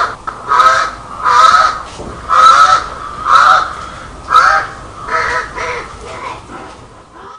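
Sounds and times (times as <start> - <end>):
crow cawing: 0.5 - 6.0.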